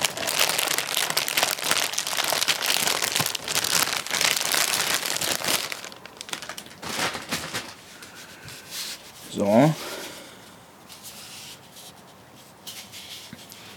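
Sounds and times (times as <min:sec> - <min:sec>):
plastic bag crinkling as it is pulled open to unpack an Echo 4 device: 0:00.0 - 0:08.3
speech: 0:09.4 - 0:09.9.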